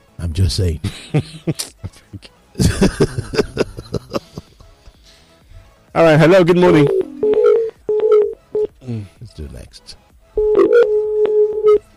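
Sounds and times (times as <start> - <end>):
speech: 0.2 - 3.6, 6.0 - 7.0, 9.0 - 10.1
laughter: 0.8 - 5.0
steady telephone tone: 6.6 - 8.7, 10.4 - 11.9
short loud clear telephone dialing beeps: 6.6 - 8.8, 10.4 - 11.9.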